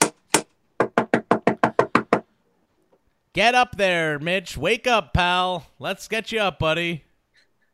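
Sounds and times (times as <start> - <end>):
knocking on a chamber door: 0.8 - 2.3
speech: 3.4 - 7.1.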